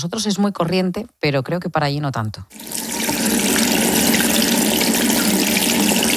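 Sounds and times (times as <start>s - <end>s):
speech: 0.0s - 3.4s
water running from a tap: 2.5s - 6.1s.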